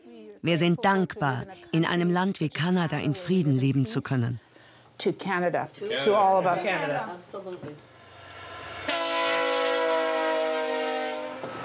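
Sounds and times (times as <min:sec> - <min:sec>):
speech: 0:00.4 - 0:07.9
approaching train horn blaring a multi-tone chord: 0:08.3 - 0:11.6.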